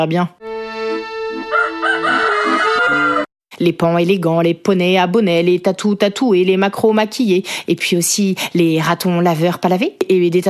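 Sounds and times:
speech: 0:00.0 - 0:00.4, 0:01.3 - 0:10.4
rooster crowing: 0:01.5 - 0:03.3.

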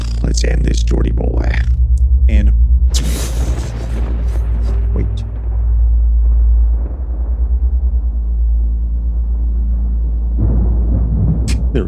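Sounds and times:
deep rolling thunder rumbling: 0:00.2 - 0:11.8
speech: 0:00.4 - 0:01.7
lightning crack: 0:02.9 - 0:11.8.

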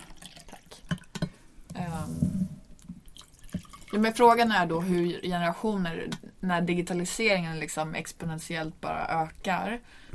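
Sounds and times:
coffee pouring into a cup: 0:00.0 - 0:01.3, 0:02.8 - 0:04.1
speech: 0:03.9 - 0:10.1.

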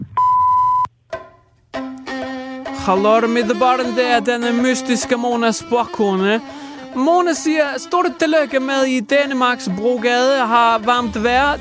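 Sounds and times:
voicemail electronic beep tone: 0:00.0 - 0:00.9
speech: 0:02.8 - 0:11.6.

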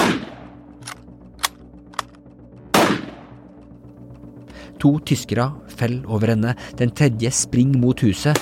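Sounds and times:
rifle gunshots with tails: 0:00.0 - 0:01.5, 0:02.7 - 0:03.4
speech: 0:04.8 - 0:08.4.

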